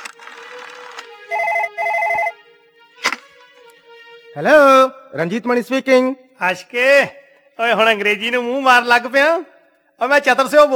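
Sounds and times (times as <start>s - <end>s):
telephone ringing after a number is dialled: 0.7s - 2.4s
sharp click: 3.0s - 3.3s
speech: 4.4s - 10.7s.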